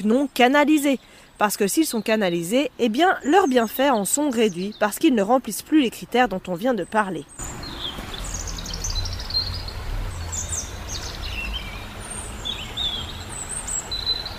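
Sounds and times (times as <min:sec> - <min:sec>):
speech: 0:00.0 - 0:07.6
low rumble of traffic: 0:01.5 - 0:14.3
small bird singing overhead: 0:07.2 - 0:14.3.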